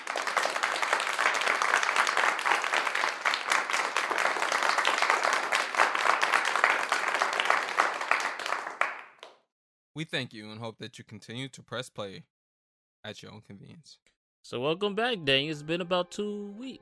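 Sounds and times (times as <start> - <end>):
crowd applauding: 0.0 - 9.4
speech: 10.0 - 12.3, 13.0 - 16.7.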